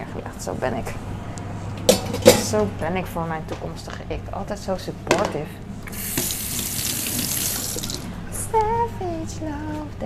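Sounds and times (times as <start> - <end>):
speech: 0.4 - 1.1, 1.9 - 6.2, 8.5 - 10.0
water running from a tap into a sink: 5.9 - 8.1.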